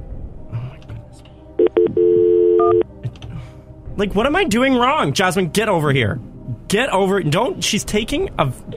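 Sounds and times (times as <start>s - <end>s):
cell phone keypad tones dialing directory assistance: 1.6s - 2.8s
speech: 4.0s - 8.7s.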